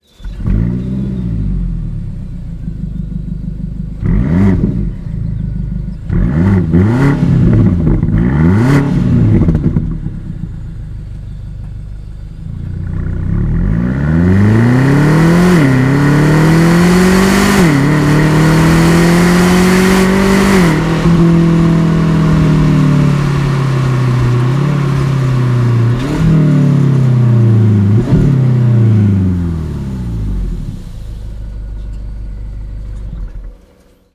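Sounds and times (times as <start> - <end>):
BMW XM with Slip-On Line exhaust: 0.0 - 34.1.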